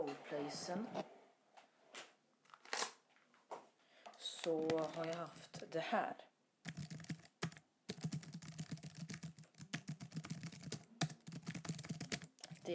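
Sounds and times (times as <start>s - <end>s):
speech: 0.3s - 1.2s, 4.4s - 6.3s
typing on a computer keyboard: 6.7s - 12.7s.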